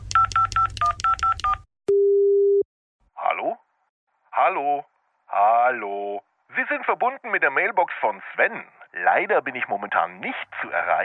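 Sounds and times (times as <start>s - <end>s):
telephone keypad tones as a number is dialed: 0.2s - 2.6s
speech: 4.5s - 11.0s.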